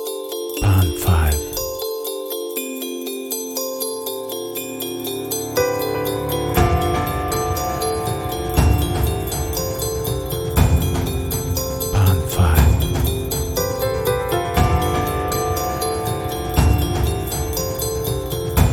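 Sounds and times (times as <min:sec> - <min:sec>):
Christmas countdown clock: 0:00.6 - 0:01.9, 0:05.6 - 0:18.7.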